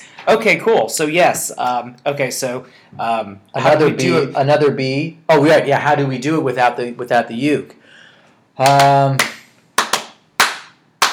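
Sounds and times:
speech: 0:00.2 - 0:07.8, 0:08.6 - 0:09.4
sustained voiced tone: 0:03.5 - 0:04.8
sharp hand claps: 0:08.6 - 0:11.1.

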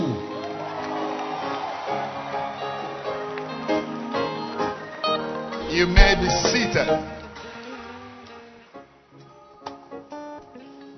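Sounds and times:
church audience cheering and whooping: 0:00.0 - 0:08.5
speech: 0:05.8 - 0:07.2.

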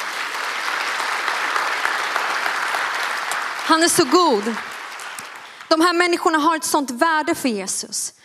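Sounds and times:
congregation applauding: 0:00.0 - 0:06.4
speech: 0:03.7 - 0:04.7, 0:05.7 - 0:08.2.

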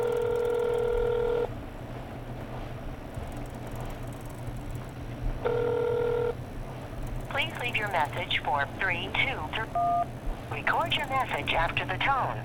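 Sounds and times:
electronic phone ringing: 0:00.0 - 0:01.5, 0:05.4 - 0:06.4
low constant rumble: 0:00.0 - 0:12.4
speech: 0:07.7 - 0:12.4.

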